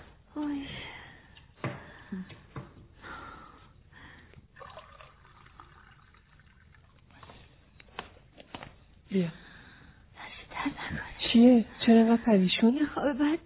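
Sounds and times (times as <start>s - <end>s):
cold water from the fridge pouring into a glass: 4.5s - 7.5s
speech: 9.2s - 9.4s, 11.4s - 13.4s.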